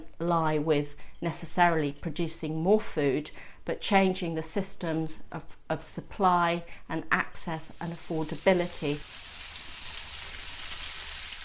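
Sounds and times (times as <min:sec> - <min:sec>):
speech: 0:00.2 - 0:09.2
homemade hamburgers sizzling while frying: 0:07.6 - 0:11.4.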